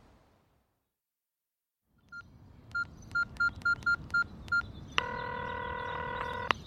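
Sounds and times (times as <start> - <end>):
cell phone keypad touch-tone beeps: 2.1 - 6.5.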